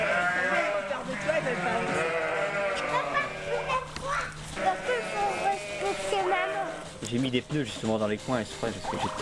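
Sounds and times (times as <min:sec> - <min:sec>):
ewes bleating on a farm: 0:00.0 - 0:03.9, 0:04.6 - 0:06.9
speech: 0:07.1 - 0:09.2.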